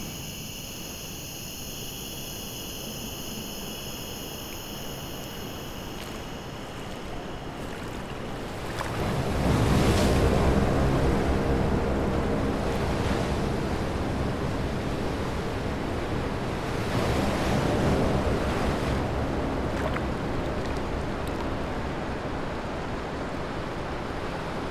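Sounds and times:
ocean waves crashing against a breakwater: 5.2s - 24.6s
wind rushing over the surf: 5.4s - 24.6s.

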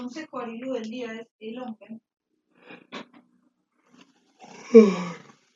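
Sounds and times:
speech: 0.1s - 2.1s, 4.7s - 5.2s
drawn-out human yawn: 4.5s - 5.3s.

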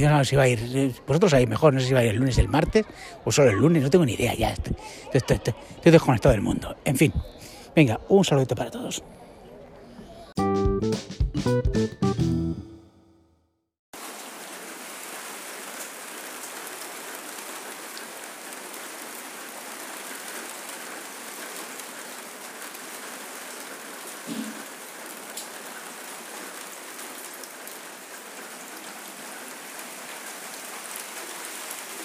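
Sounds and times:
speech: 0.0s - 9.2s, 10.8s - 12.6s
steady dense rain pouring: 14.0s - 32.0s.

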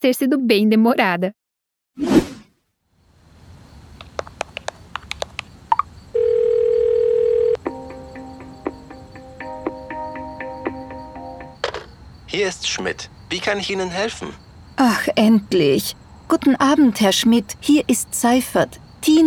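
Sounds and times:
speech: 0.0s - 1.4s, 2.0s - 2.3s, 12.4s - 19.2s
sharp clicks: 4.0s - 5.9s
telephone dial tone after a dropped call: 6.2s - 7.6s.

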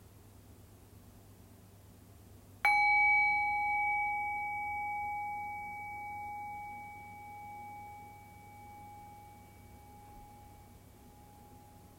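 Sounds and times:
meditation bell ringing: 2.7s - 11.9s.

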